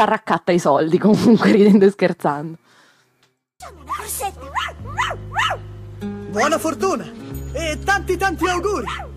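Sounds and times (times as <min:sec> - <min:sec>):
speech: 0:00.0 - 0:02.8, 0:03.6 - 0:09.1
dog barking in sharp high-pitched yips: 0:03.9 - 0:05.6, 0:08.8 - 0:09.1.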